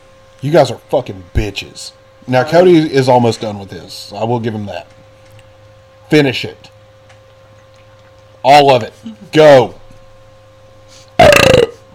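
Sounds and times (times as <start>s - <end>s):
speech: 0.4s - 5.0s, 6.1s - 6.7s, 8.4s - 9.8s
burp: 11.2s - 11.9s.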